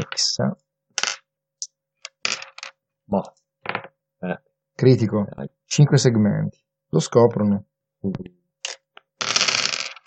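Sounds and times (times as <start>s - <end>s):
speech: 0.1s - 0.6s, 3.1s - 3.4s, 4.2s - 8.4s
six dice clattering and tumbling across a hard tabletop: 1.0s - 1.3s, 2.0s - 2.8s, 8.6s - 10.0s.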